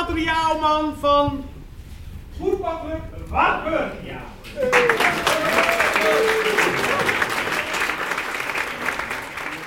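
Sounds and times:
speech: 0.2 - 1.5, 2.4 - 6.9
audience cheers and whoops: 4.6 - 7.9
large audience applauding: 4.6 - 9.6.

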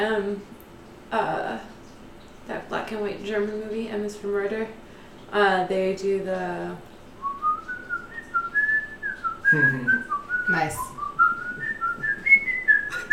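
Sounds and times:
speech: 0.0 - 1.7, 2.5 - 6.9, 9.5 - 10.9
melodic tune whistled: 7.2 - 13.1.

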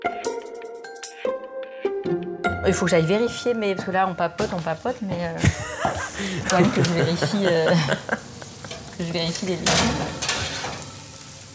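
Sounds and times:
speech: 2.0 - 8.3, 9.0 - 10.2
laughter: 5.4 - 9.0
oil simmering in a pan: 5.5 - 11.5.

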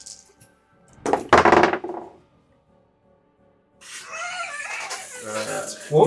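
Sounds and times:
dice tumbling across a hard tabletop: 1.0 - 2.2.

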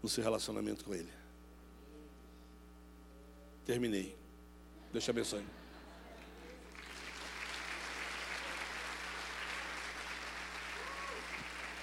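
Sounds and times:
speech: 0.0 - 1.3, 3.7 - 4.2, 4.9 - 5.6
faint low hum: 0.0 - 11.8
audience applauding: 6.6 - 11.8.

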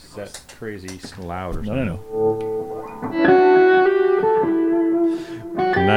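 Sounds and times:
speech: 0.1 - 3.5, 5.8 - 5.9
1952 Telecaster electric guitar played through an amplifier with distortion: 1.7 - 5.9.

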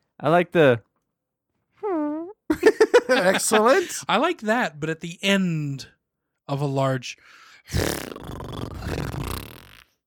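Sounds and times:
speech: 0.2 - 0.9, 3.1 - 9.1
laughter: 2.5 - 4.0
voice making a buzzy tone and mouth imitating a fart noise: 7.7 - 10.0.

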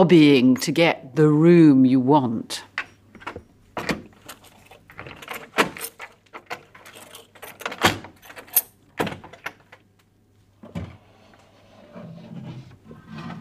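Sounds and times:
speech: 0.0 - 2.7
wooden cabinet double doors clicking, latch rattling and creaking as opened: 2.7 - 9.9, 10.6 - 11.1.

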